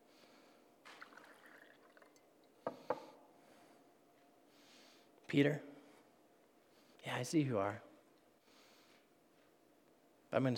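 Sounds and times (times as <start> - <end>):
juice or wine pouring: 0.8 - 2.3
drips or splashes of liquid: 0.9 - 2.2
speech: 5.3 - 5.7, 7.2 - 7.9, 10.3 - 10.5.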